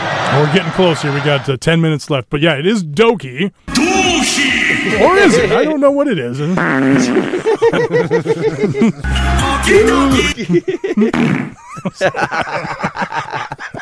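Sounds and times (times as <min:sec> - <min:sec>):
laughter: 0:00.0 - 0:01.2, 0:06.9 - 0:13.8
speech: 0:00.3 - 0:13.8
loud sputtering fart noise: 0:06.5 - 0:07.6, 0:11.1 - 0:11.6.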